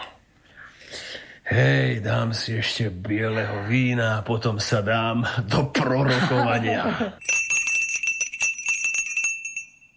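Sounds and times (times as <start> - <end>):
speech: 1.5 - 7.3
laughter: 5.8 - 7.2
small hand bell ringing to summon a servant: 7.2 - 9.9.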